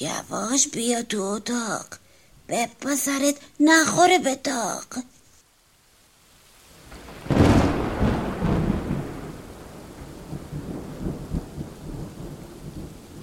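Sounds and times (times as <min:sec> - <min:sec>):
speech: 0:00.0 - 0:05.2
steady rain pattering with heavier drops: 0:00.0 - 0:13.2
loud crack of thunder rumbling: 0:06.9 - 0:13.2.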